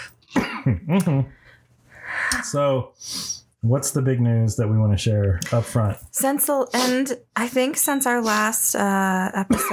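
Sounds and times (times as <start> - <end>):
harsh raspy coughing after a dab hit: 0.2 - 1.3, 9.5 - 9.7
speech: 0.6 - 1.4, 2.5 - 9.7.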